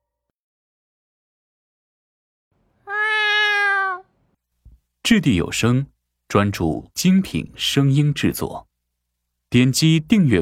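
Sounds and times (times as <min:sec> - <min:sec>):
cat meowing: 0:02.8 - 0:04.1
speech: 0:05.1 - 0:08.7, 0:09.5 - 0:10.3.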